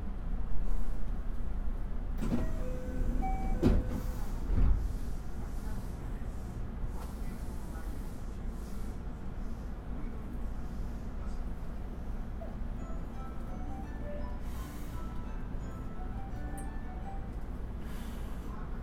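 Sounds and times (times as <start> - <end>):
JR West 323 series commuter train rumbling inside the carriage: 0.0 - 18.8
faint tonal whines: 2.2 - 4.5, 12.1 - 18.2.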